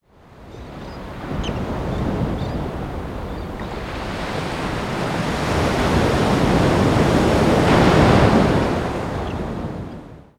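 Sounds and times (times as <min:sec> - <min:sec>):
beach ambience: 0:00.1 - 0:10.3.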